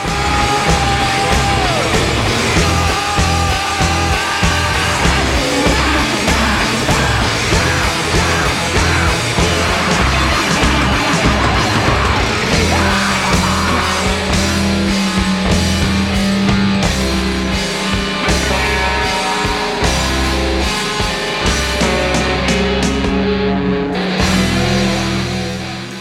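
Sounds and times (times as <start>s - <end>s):
male rock singer screaming and wailing wildly: 0.0s - 14.6s
pounding rock drums: 0.0s - 23.4s
distorted rock guitars: 0.0s - 25.9s.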